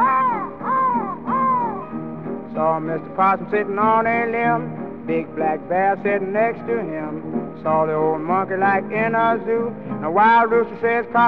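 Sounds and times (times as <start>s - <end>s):
crow cawing: 0.0s - 2.0s
speech: 2.8s - 11.2s.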